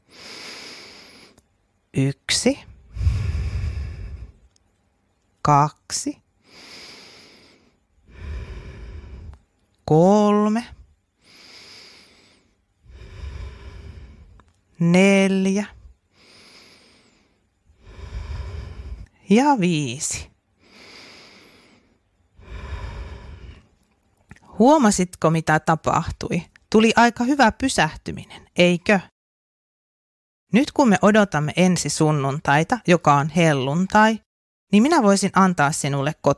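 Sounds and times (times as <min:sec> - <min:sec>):
slow deep breaths during a guided breathing exercise: 0:00.0 - 0:01.4, 0:02.7 - 0:04.6, 0:06.4 - 0:09.6, 0:10.7 - 0:14.6, 0:15.7 - 0:19.2, 0:20.6 - 0:23.8
speech: 0:02.0 - 0:02.7, 0:05.5 - 0:06.2, 0:09.9 - 0:10.8, 0:14.8 - 0:15.8, 0:19.3 - 0:20.3, 0:24.6 - 0:29.1, 0:30.5 - 0:36.3.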